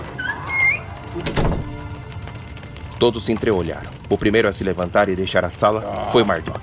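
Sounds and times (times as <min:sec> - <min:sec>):
door hinge creaking: 0:00.0 - 0:01.9
door shutting with a solid thud: 0:00.1 - 0:01.8
speech: 0:03.0 - 0:06.6.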